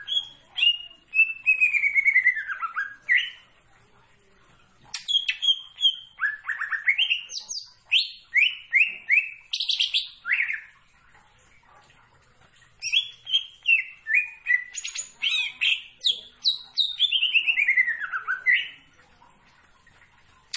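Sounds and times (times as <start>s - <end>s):
leafbird song with slurred whistles and descending trill: 0.0s - 3.5s, 4.9s - 10.8s, 12.8s - 18.9s.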